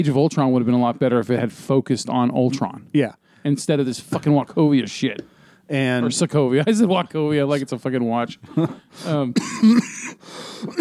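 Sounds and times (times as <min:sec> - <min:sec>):
speech: 0:00.0 - 0:10.8
person coughing: 0:08.5 - 0:10.8
person clearing throat: 0:09.4 - 0:10.8.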